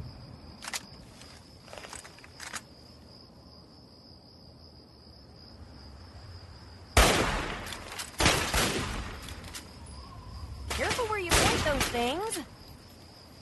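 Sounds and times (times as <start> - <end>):
crickets chirping at night: 0.0 - 13.4
hunting rifle gunshots in video game: 7.0 - 9.4, 10.8 - 11.9
speech: 11.9 - 12.5.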